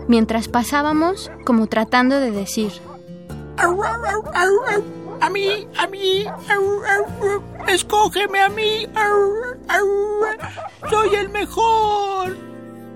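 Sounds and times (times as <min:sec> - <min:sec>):
speech: 0:00.1 - 0:02.9, 0:03.6 - 0:12.5
human voice imitating dogs barking and howling: 0:03.6 - 0:11.5.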